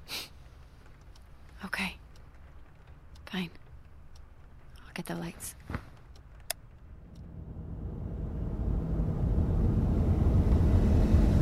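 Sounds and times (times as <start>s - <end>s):
speech: 1.6s - 2.0s, 3.3s - 3.6s, 5.1s - 5.7s
car engine rumbling as the car approaches and pulls up: 6.0s - 11.3s.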